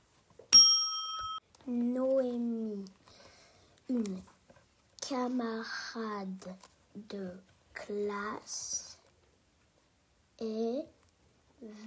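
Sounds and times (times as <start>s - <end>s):
doorbell chime: 0.6s - 1.4s
speech: 1.7s - 3.0s, 3.9s - 4.3s, 5.1s - 8.9s, 10.4s - 11.0s, 11.6s - 11.8s.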